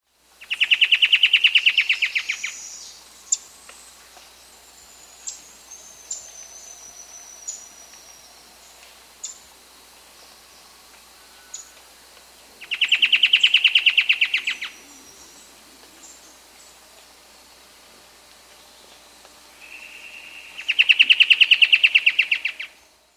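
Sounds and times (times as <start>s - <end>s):
Roraiman Antwren in S. America: 0.4s - 3.5s, 4.9s - 9.4s, 11.2s - 11.9s, 12.6s - 16.9s, 19.6s - 23.0s.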